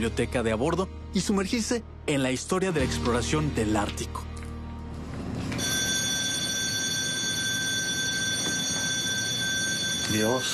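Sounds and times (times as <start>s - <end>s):
speech: 0.0s - 4.3s, 10.1s - 10.5s
ship's electric alarm bell ringing for lifeboat drill: 5.6s - 10.5s.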